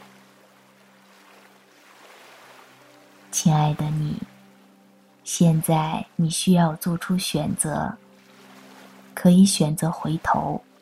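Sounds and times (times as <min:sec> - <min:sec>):
gentle ocean surf: 0:00.0 - 0:10.8
speech: 0:03.3 - 0:04.3, 0:05.3 - 0:08.0, 0:09.2 - 0:10.7.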